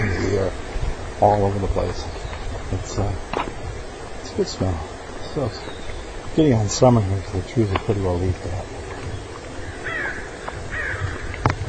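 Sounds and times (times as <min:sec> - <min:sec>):
crow cawing: 0:00.0 - 0:00.6, 0:09.6 - 0:11.6
speech: 0:01.2 - 0:03.6, 0:04.4 - 0:05.8, 0:06.4 - 0:08.9.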